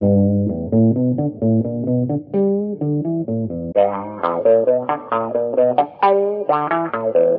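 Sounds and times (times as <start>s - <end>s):
guitar: 0.0s - 7.3s.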